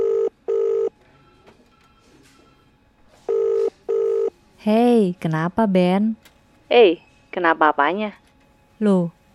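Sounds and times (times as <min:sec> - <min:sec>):
outgoing call telephone ringback tone double beep: 0:00.0 - 0:02.7, 0:03.3 - 0:04.3
speech: 0:04.6 - 0:08.2, 0:08.8 - 0:09.2.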